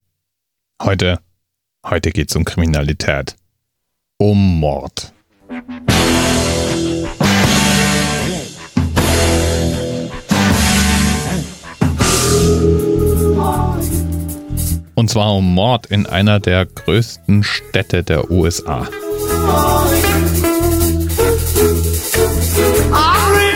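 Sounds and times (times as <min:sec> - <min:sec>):
speech: 0:00.8 - 0:03.4, 0:04.2 - 0:05.1, 0:15.0 - 0:19.9
TV crime-drama theme song with rhythmic rock instrumentation: 0:05.4 - 0:15.0, 0:18.2 - 0:23.5.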